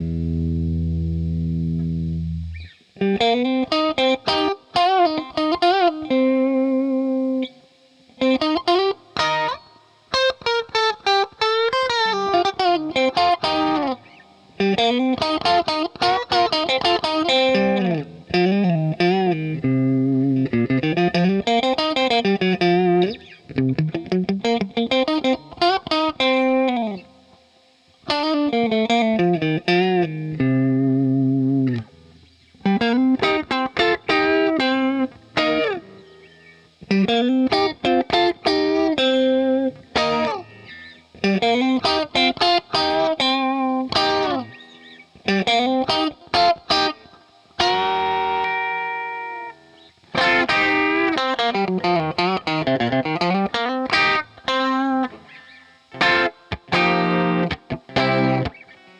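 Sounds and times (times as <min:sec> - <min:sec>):
Strat61 electric guitar: 0:00.0 - 0:58.9.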